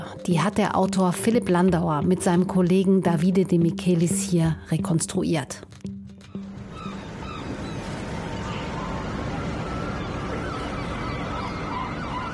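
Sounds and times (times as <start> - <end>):
speech: 0.2 - 5.8
bird calls and honks: 6.3 - 12.3
water washing against moored boats in a small harbor: 7.1 - 12.3.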